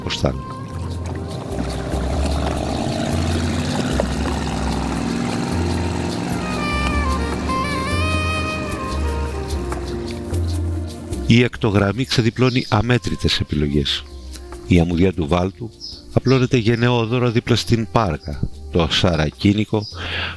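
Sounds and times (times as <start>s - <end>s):
small boat engines droning along a pine-lined coast: 0.0s - 11.3s
thin high tones: 0.0s - 11.5s
speech: 0.1s - 0.6s, 11.3s - 14.1s, 14.7s - 20.3s.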